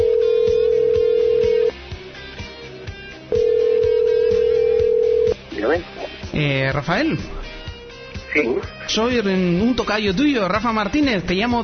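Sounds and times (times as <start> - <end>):
ringback tone of an outgoing phone call: 0.0 - 1.7, 3.3 - 5.4
speech: 6.4 - 7.4, 8.4 - 11.6.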